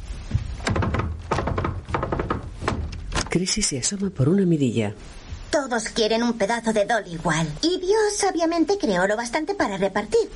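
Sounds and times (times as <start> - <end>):
faint room hum: 0.0 - 10.3
woman knocking on a wooden door: 0.3 - 3.1
speech: 3.3 - 10.3.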